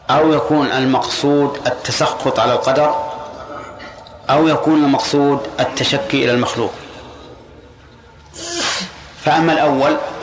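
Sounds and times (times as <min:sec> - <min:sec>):
speech: 0:00.1 - 0:03.1, 0:04.3 - 0:06.8, 0:09.2 - 0:10.1
person sneezing: 0:08.4 - 0:08.9.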